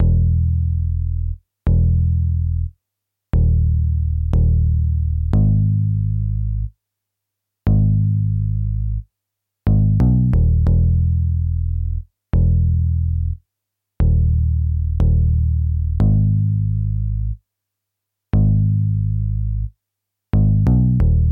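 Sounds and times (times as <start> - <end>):
bass line without sidechain: 0.0 - 2.7, 3.4 - 6.7, 7.7 - 9.0, 9.7 - 13.4, 14.0 - 17.4, 18.4 - 19.7, 20.4 - 21.3.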